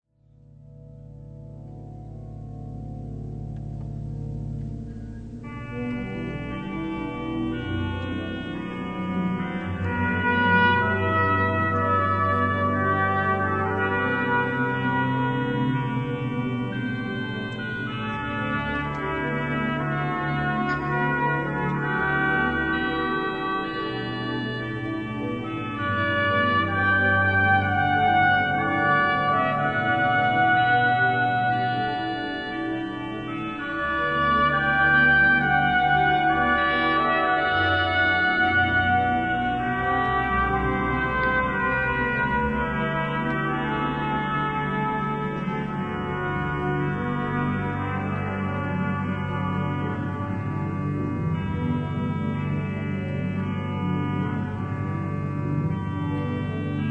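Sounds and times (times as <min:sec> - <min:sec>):
organ improvisation in Valladolid: 0:04.5 - 0:56.8
trumpet improvisation in Valladolid: 0:05.4 - 0:50.5.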